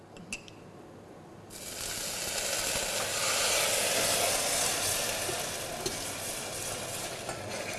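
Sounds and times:
sugar with a little water sizzling while caramelized in a pan over low heat: 0:01.5 - 0:07.7.

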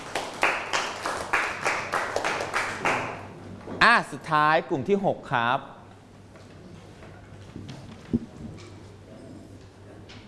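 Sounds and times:
group clapping in rhythm: 0:00.0 - 0:03.3
speech: 0:04.0 - 0:05.8.

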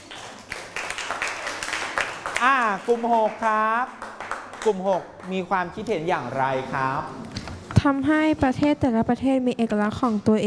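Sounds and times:
students clapping in a classroom for a classmate: 0:00.0 - 0:05.5
speech: 0:02.4 - 0:04.0, 0:04.6 - 0:10.4.

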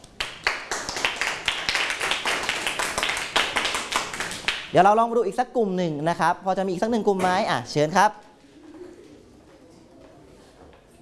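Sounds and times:
group of children clapping in a classroom: 0:00.0 - 0:04.7
speech: 0:04.7 - 0:08.2.

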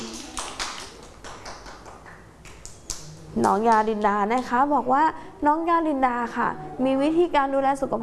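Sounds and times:
small group clapping hands: 0:00.0 - 0:04.5
speech: 0:03.4 - 0:08.0.

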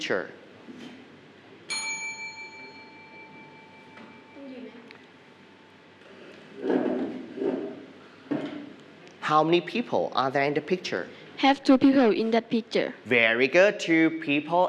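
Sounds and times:
speech: 0:00.0 - 0:00.9, 0:09.3 - 0:14.6
single bright bell ding: 0:01.7 - 0:04.7.

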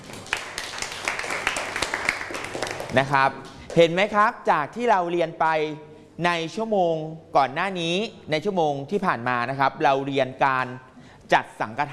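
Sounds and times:
classroom of students applauding a classmate: 0:00.0 - 0:03.2
speech: 0:02.9 - 0:11.9.

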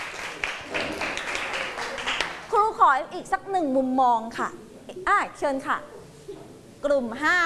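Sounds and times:
classroom applause for a student: 0:00.0 - 0:02.6
speech: 0:02.8 - 0:06.0, 0:06.8 - 0:07.4.

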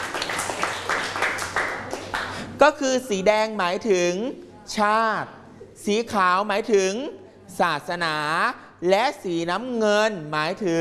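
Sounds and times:
class of students applauding a classmate: 0:00.0 - 0:02.4
speech: 0:02.6 - 0:10.7.

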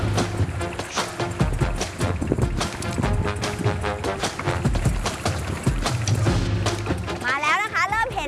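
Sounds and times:
rushing water around a small fishing boat: 0:00.0 - 0:08.2
small fishing boat engine running: 0:00.0 - 0:08.2
people talking on a fishing boat: 0:07.2 - 0:08.2.

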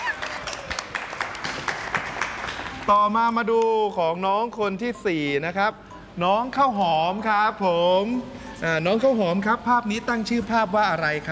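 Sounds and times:
audience applause at a children's drawing presentation: 0:00.0 - 0:02.9
speech: 0:02.9 - 0:11.3.

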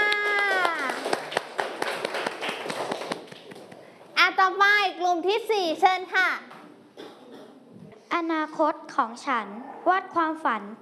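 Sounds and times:
group of children clapping for a classmate: 0:00.0 - 0:03.8
speech: 0:05.0 - 0:06.5, 0:08.1 - 0:10.8.

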